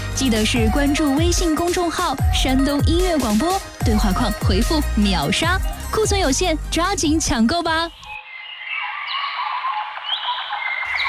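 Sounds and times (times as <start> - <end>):
speech: 0.2 - 8.0
dense chorus of birdsong with chirps and trills: 8.0 - 11.0.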